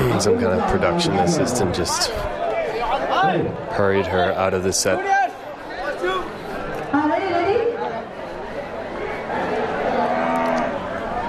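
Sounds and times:
crowd murmuring and chattering: 0.0s - 11.2s
speech: 0.2s - 2.4s, 3.2s - 5.2s
cow mooing: 10.0s - 10.8s.

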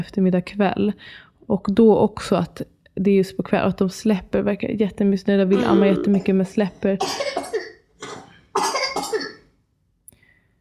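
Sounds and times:
speech: 0.0s - 7.7s
small boy coughing: 5.6s - 6.4s, 7.0s - 9.4s.

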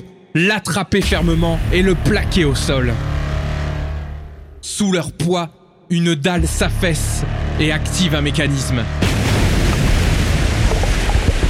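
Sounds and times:
speech: 0.0s - 3.1s, 4.6s - 9.0s
torrents of water pouring into a tomb: 9.0s - 11.4s.

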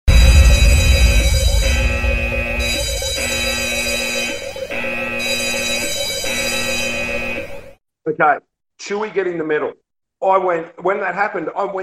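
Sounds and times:
dense buzzing low rumble: 0.1s - 5.2s
electronic alarm sound effect blaring: 0.1s - 7.8s
speech: 8.2s - 11.8s.

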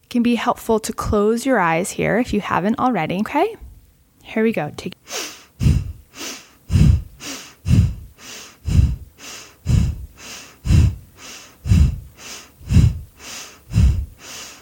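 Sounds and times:
speech: 0.1s - 3.6s, 4.2s - 5.0s
forceful breaths in a breathing exercise: 5.0s - 14.5s.

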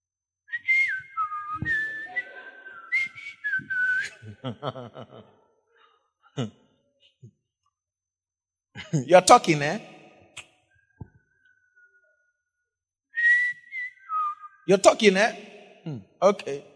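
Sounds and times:
person whistling a tune: 0.5s - 4.4s, 13.2s - 14.7s
laughter: 1.6s - 3.1s, 4.0s - 5.4s, 8.8s - 9.5s
speech: 4.4s - 5.4s, 6.4s - 6.6s, 8.9s - 9.9s, 14.7s - 16.7s.

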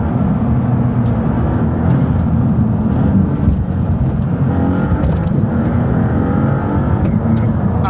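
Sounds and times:
turbocharged car engine accelerating heard from inside the cabin: 0.0s - 7.8s.

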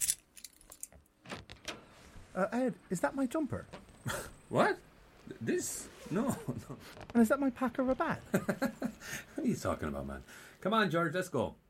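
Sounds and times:
keys jangling as they are handed from one hand to another: 0.0s - 1.0s
speech: 2.4s - 11.6s.

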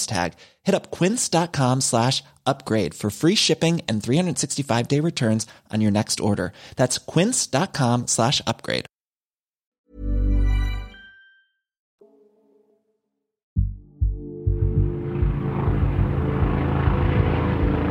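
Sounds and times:
speech: 0.0s - 8.9s
short deep tonal blare: 13.6s - 17.8s
helicopter flying overhead at dawn over the Jacarezinho favela in Rio de Janeiro: 15.0s - 17.8s.

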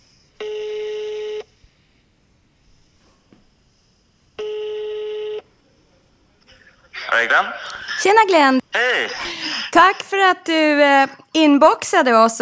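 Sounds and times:
faint hiss: 0.0s - 12.4s
telephone ringback tone as a call is placed: 0.4s - 1.5s, 4.4s - 5.4s
speech: 7.2s - 12.4s.

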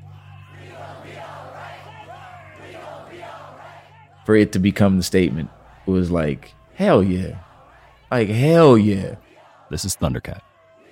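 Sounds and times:
large outdoor protest crowd chanting against police shootings: 0.0s - 10.9s
speech: 4.2s - 7.5s, 8.1s - 10.5s.

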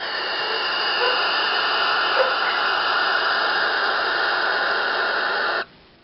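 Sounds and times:
owl hissing: 0.0s - 5.7s.

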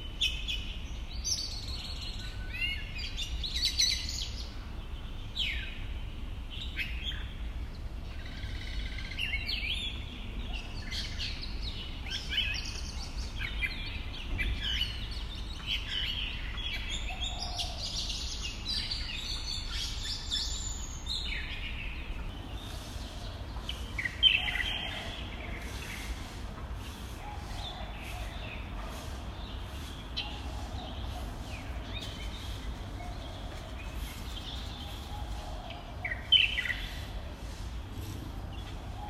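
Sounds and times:
birds chirping and calling: 0.0s - 39.0s.

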